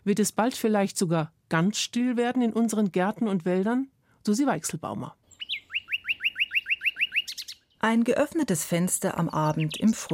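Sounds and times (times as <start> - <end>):
speech: 0.0 - 5.2, 7.8 - 10.1
male nightingale singing: 5.2 - 8.0, 8.9 - 10.1.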